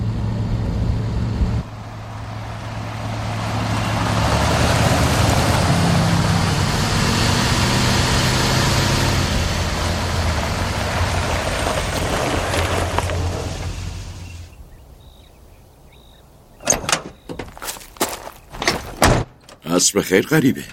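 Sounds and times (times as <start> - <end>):
car engine idling and rumbling: 0.0 - 14.6
speech: 19.8 - 20.7.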